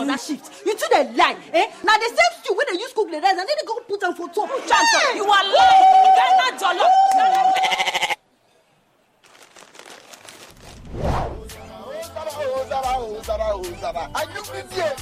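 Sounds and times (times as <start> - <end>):
speech: 0.1 - 7.8, 13.5 - 15.0
goat bleating: 7.5 - 8.2
rustling whoosh: 10.2 - 11.5.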